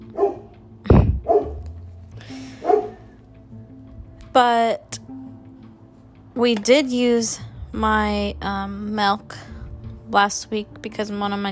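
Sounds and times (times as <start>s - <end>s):
dog barking: 0.1s - 0.5s, 1.2s - 1.6s, 2.6s - 3.0s
speech: 4.4s - 4.9s, 6.4s - 9.5s, 10.1s - 11.5s.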